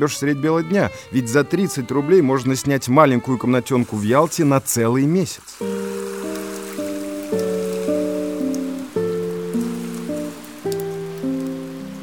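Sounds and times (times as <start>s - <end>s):
speech: 0.0s - 5.9s
light steady rain pattering softly: 3.6s - 12.0s
slow sustained musical chords: 5.6s - 12.0s.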